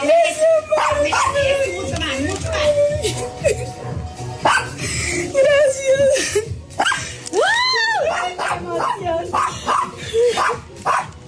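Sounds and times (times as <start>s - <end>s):
people talking: 0.0s - 3.6s, 5.3s - 6.5s, 7.4s - 10.6s
lively noise: 0.0s - 11.2s
excited dog barking and yipping: 0.7s - 1.7s, 4.4s - 4.8s, 6.8s - 7.1s, 8.0s - 11.2s
laughter: 1.8s - 4.0s, 4.8s - 8.8s, 9.4s - 10.9s.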